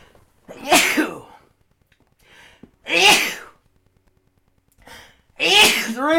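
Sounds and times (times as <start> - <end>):
person sneezing loudly: 0.5 - 1.4, 2.9 - 3.6, 5.4 - 6.1.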